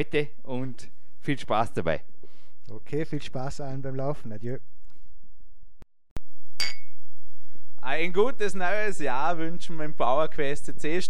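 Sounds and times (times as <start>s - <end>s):
speech: 0.0s - 2.1s, 2.7s - 4.7s, 7.8s - 11.0s
two glasses clinking in a toast: 6.6s - 7.0s.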